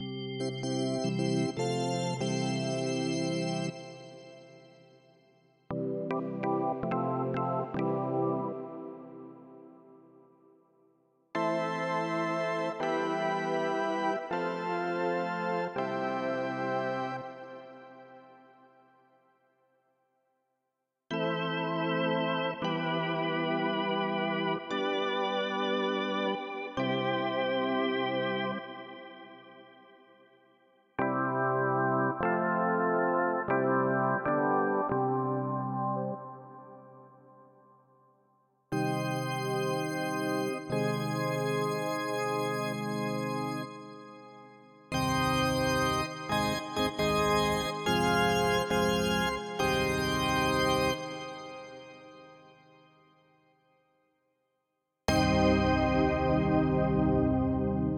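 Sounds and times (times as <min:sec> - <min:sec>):
organ: 0:00.0 - 0:04.8, 0:05.7 - 0:09.3, 0:11.4 - 0:18.3, 0:21.1 - 0:29.9, 0:31.0 - 0:36.8, 0:38.8 - 0:52.4, 0:55.1 - 0:57.9.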